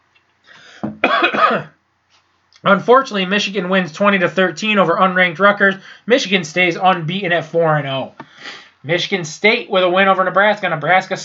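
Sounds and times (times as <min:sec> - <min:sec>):
speech: 0:00.8 - 0:01.8, 0:02.6 - 0:11.2
throat clearing: 0:00.8 - 0:01.8.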